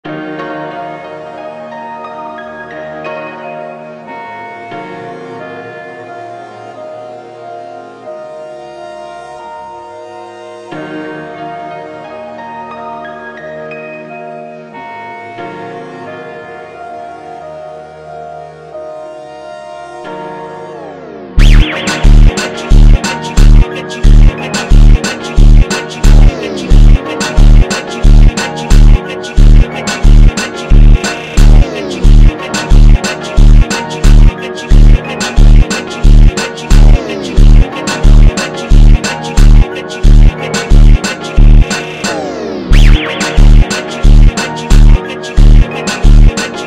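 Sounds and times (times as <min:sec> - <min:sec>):
funk piano: 0:21.4 - 0:46.6.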